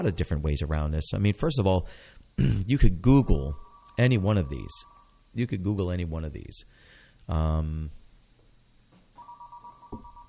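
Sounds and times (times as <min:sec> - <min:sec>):
speech: 0:00.0 - 0:08.0
steady single tone: 0:03.2 - 0:05.4, 0:09.2 - 0:10.2
telephone ringing: 0:03.6 - 0:05.1, 0:09.2 - 0:10.2.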